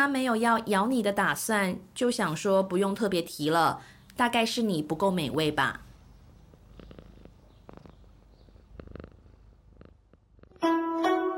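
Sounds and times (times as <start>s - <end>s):
speech: 0.0s - 5.8s
cat purring while licking a person: 5.1s - 10.7s
cat licking a person: 6.4s - 10.6s.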